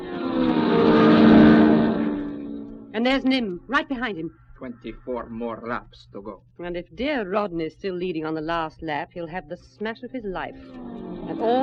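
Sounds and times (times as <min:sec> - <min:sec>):
race car engine roar pulling away onto a racing lap: 0:00.0 - 0:03.0, 0:10.6 - 0:11.6
speech: 0:03.0 - 0:11.6.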